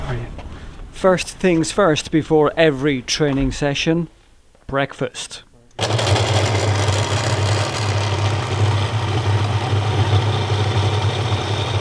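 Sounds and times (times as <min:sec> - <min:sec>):
speech: 0:01.0 - 0:05.5
kitchen blender running at full speed: 0:05.8 - 0:11.7.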